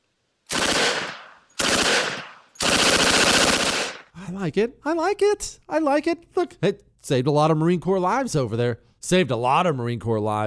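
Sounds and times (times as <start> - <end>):
Thompson submachine gun firing in automatic bursts: 0.5 - 4.1
speech: 4.3 - 10.4.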